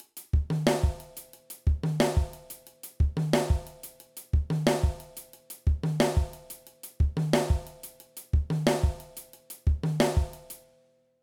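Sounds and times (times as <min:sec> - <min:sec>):
drum backbeat: 0:00.0 - 0:10.5.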